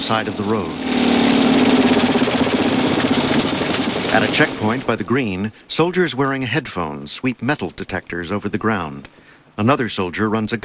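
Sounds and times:
military trucks and two escort motorcycles driving past stone houses in a village: 0.0s - 5.1s
speech: 0.1s - 1.3s, 4.1s - 10.6s.

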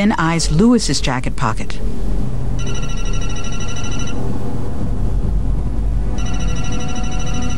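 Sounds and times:
speech: 0.0s - 3.2s
steady low rumble of noise: 0.0s - 7.5s
cell phone ringing with electronic trilling bursts: 2.6s - 4.2s, 6.2s - 7.5s.

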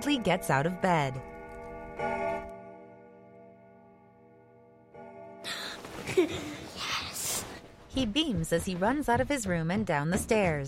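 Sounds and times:
speech: 0.0s - 1.3s, 2.0s - 2.5s, 6.2s - 6.6s, 8.0s - 10.6s
large wall clock chiming the hour: 0.0s - 6.0s.

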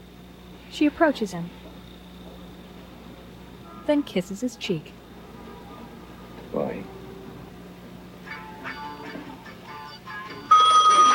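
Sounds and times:
speech: 0.7s - 1.6s, 3.9s - 5.0s
murmuring busy background of tonal sounds in a bar: 3.6s - 7.5s
telephone bell ringing in a bar: 10.4s - 11.1s.

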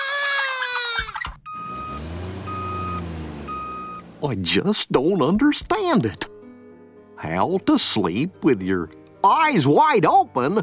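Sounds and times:
wailing cry: 0.0s - 1.2s
big truck engine rumbling: 1.4s - 4.7s
truck reversing beep: 1.5s - 4.1s
speech: 4.2s - 6.3s, 7.2s - 10.6s.

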